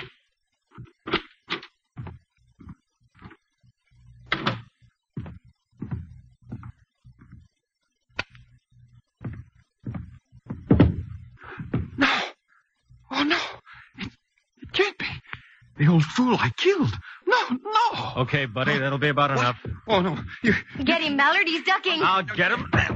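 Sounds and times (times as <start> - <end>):
muffled footsteps: 0.7 - 3.9, 4.5 - 12.1, 19.4 - 21.0
speech: 15.9 - 22.8.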